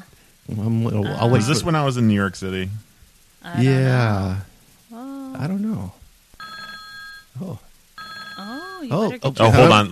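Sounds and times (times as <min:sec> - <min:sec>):
speech: 0:00.5 - 0:04.5, 0:05.4 - 0:06.0, 0:07.4 - 0:07.7, 0:08.4 - 0:09.9
telephone ringing in electronic bursts: 0:06.4 - 0:07.3, 0:08.0 - 0:09.7.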